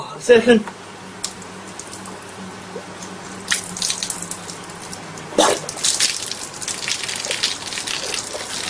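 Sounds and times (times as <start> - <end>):
speech: 0.2 - 0.8
cheap beer pouring out and spilling onto a surface: 3.2 - 8.6.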